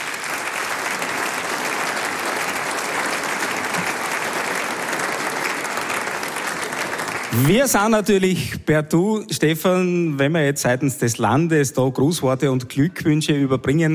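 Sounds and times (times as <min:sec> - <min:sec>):
audience applause welcoming a guest: 0:00.0 - 0:08.3
speech: 0:07.3 - 0:13.9.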